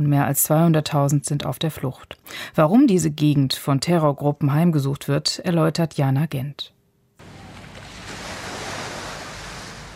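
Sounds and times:
speech: 0:00.0 - 0:06.8
ocean waves breaking on a beach: 0:07.2 - 0:09.9.

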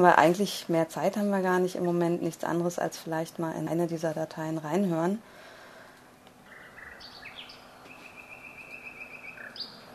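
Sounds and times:
speech: 0:00.0 - 0:05.4
steady hiss: 0:00.0 - 0:09.9
nightingale singing: 0:06.4 - 0:09.9.

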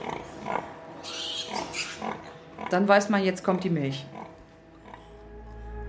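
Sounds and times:
sow grunting rhythmically: 0:00.0 - 0:02.9, 0:04.0 - 0:05.7
speech: 0:02.7 - 0:04.2.

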